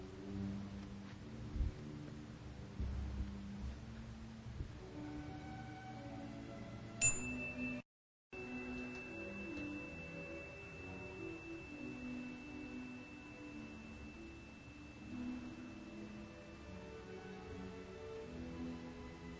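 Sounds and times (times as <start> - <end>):
soft calm music: 0.0 - 7.8, 8.4 - 19.3
meditation chime ringing: 7.0 - 7.8, 8.4 - 18.6.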